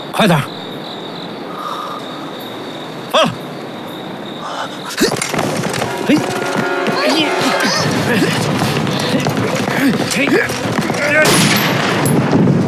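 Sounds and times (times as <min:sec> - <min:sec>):
speech: 0:00.2 - 0:00.6, 0:08.1 - 0:12.2
laughter: 0:03.1 - 0:03.4, 0:04.4 - 0:11.7
person shouting: 0:03.1 - 0:03.4, 0:06.9 - 0:08.4
rapid overlapping gunfire: 0:10.5 - 0:12.5.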